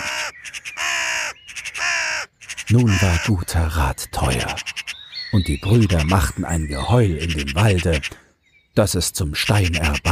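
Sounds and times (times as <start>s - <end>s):
crows cawing loudly in the forest: 0.0s - 3.5s, 4.3s - 8.4s
speech: 2.7s - 8.2s, 8.8s - 10.1s.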